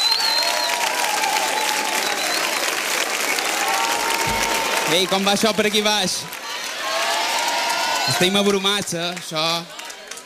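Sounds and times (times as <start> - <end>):
audience applause: 0.0 - 10.2
speech: 4.9 - 6.4, 8.0 - 9.8.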